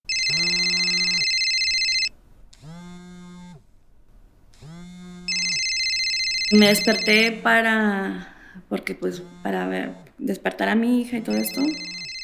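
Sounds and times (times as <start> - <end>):
phone ringing with a bright electronic trill: 0.0 - 2.1, 5.3 - 8.4, 11.1 - 12.2
speech: 6.5 - 12.0.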